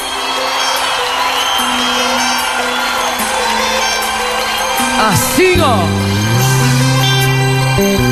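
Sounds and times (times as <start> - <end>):
scattered whoops from the crowd: 0.0 - 5.3
large crowd cheering and shouting: 0.0 - 8.0
speech: 5.0 - 6.0.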